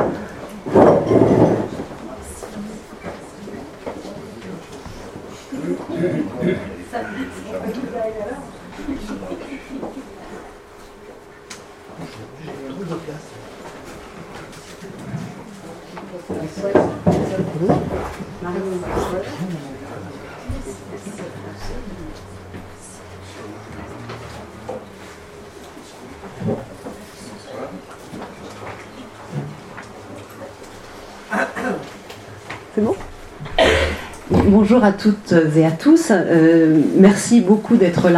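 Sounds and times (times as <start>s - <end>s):
audience chairs scraping across a library floor: 0.0s - 6.6s, 13.6s - 31.2s, 31.8s - 35.4s
murmur of audience talking at a library conference: 0.0s - 38.1s
laughter: 5.3s - 7.9s, 8.6s - 10.4s
speech: 34.6s - 38.1s.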